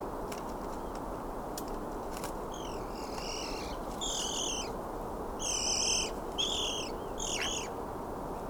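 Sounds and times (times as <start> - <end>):
steady low rumbling background noise: 0.0 - 8.4
Eurasian magpie Pica pica squealing calls: 2.6 - 4.7, 5.4 - 7.7.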